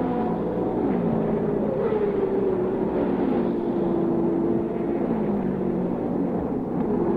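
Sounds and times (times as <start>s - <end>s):
race car engines roaring past during an auto race: 0.0s - 7.1s.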